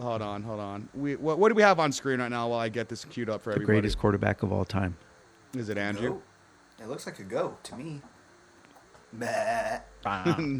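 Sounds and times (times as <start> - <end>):
speech: 0.0 - 8.1, 9.1 - 10.5
person imitating a goat with wavering nasal bleats: 9.2 - 10.3.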